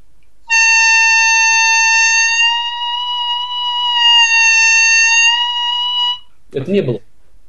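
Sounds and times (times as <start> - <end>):
harmonica overblow note bent upward in pitch: 0.5 - 6.3
speech: 6.7 - 7.1.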